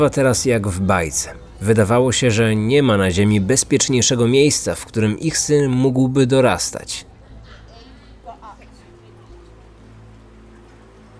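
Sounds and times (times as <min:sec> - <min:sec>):
speech: 0:00.0 - 0:07.1
faint tonal sounds: 0:00.0 - 0:11.1
steady rain on a cold windy evening: 0:00.0 - 0:11.1.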